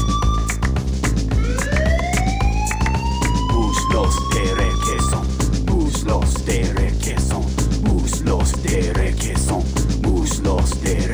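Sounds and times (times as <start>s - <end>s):
siren wailing upward in pitch: 0.0s - 5.5s
pounding rhythmic bass beat: 0.0s - 11.1s.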